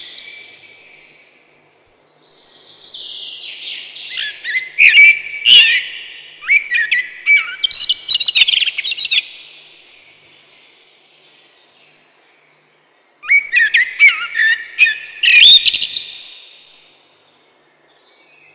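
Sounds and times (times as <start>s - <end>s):
common blackbird singing mellow fluted whistled phrases: 2.8s - 9.6s, 13.2s - 16.8s.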